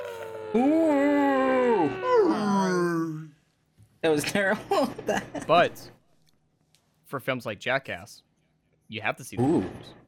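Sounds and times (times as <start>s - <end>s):
person imitating a whale call with a sliding vocal moan: 0.0s - 3.3s
speech: 0.5s - 1.0s, 4.0s - 6.0s, 7.1s - 8.3s, 8.9s - 10.0s.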